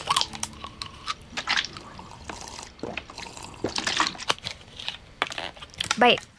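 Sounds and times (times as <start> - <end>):
person sipping and swallowing water: 0.2 - 4.5
speech: 6.0 - 6.3.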